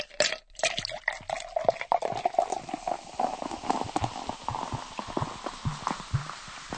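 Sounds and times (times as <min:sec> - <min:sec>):
dense crackle of popping bubbles: 0:00.0 - 0:06.7
fizzy drink poured into two glasses: 0:00.0 - 0:06.7.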